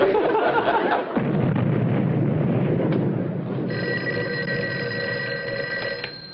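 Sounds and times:
laughter: 0.0s - 1.2s
deep rumbling blast from blasting work on an underpass: 1.1s - 3.8s
old-fashioned telephone bell ringing in a sheriff's office: 3.7s - 6.3s.

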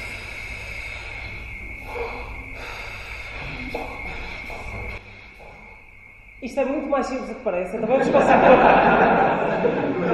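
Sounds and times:
steady buzzing didgeridoo drone played with circular breathing: 0.0s - 6.2s
quick sharp nasal sniffs of didgeridoo player breathing in: 1.8s - 4.7s
speech: 6.5s - 10.1s
laughter: 7.9s - 10.1s.

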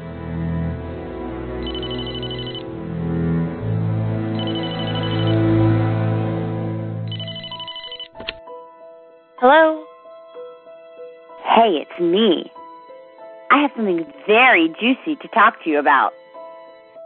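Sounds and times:
low sustained music: 0.0s - 7.6s, 8.4s - 17.0s
telephone ringing in an apartment kitchen: 1.6s - 2.6s, 4.4s - 5.4s, 7.1s - 8.2s
speech: 9.4s - 9.8s, 11.6s - 12.6s, 13.5s - 16.2s.

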